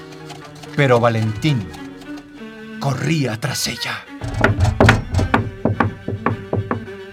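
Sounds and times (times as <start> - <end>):
loud stomping footsteps in wooden clogs: 0.0 - 2.3, 4.2 - 7.1
speech: 0.8 - 1.8, 2.8 - 4.8.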